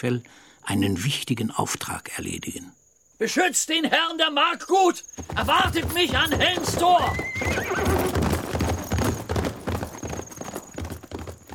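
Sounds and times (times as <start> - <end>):
speech: 0.0 - 8.3
horse hooves galloping away: 5.0 - 11.5
horse neighing: 5.2 - 10.0.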